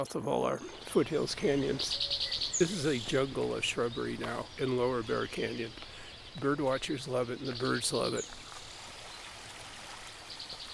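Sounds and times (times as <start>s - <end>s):
speech: 0.0s - 8.4s
creek water flowing in a shrubby foothills canyon: 0.3s - 10.7s.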